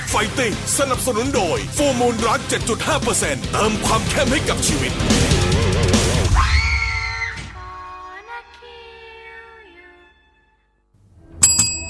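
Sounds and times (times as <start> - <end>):
speech: 0.1 - 6.0
scream: 5.2 - 7.6
bell strike: 11.4 - 11.8.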